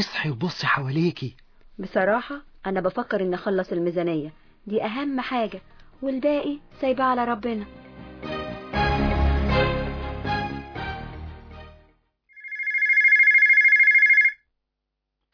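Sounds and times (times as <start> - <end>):
speech: 0.0 - 8.4
music: 4.7 - 12.2
office telephone ringing: 12.3 - 14.4.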